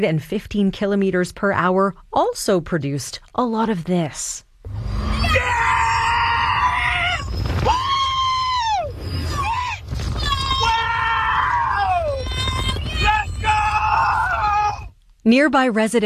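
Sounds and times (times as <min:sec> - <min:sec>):
speech: 0:00.0 - 0:04.8, 0:15.2 - 0:16.0
rumbling background: 0:04.6 - 0:15.0
roller coaster riders screaming: 0:04.7 - 0:14.9.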